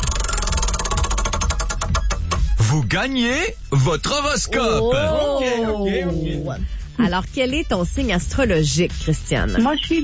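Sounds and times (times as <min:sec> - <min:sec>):
spinning prize wheel ticking: 0:00.0 - 0:02.3
speech: 0:02.7 - 0:10.0.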